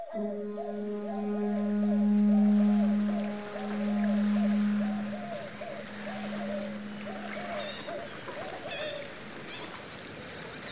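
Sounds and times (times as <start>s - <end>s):
quaint fishing harbor ambience: 0.1s - 9.4s.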